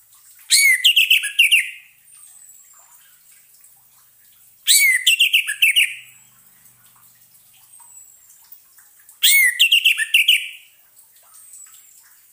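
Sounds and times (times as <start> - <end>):
orange-headed thrush whistled and chattering song: 0.5 - 1.9, 4.7 - 6.1, 9.2 - 10.6.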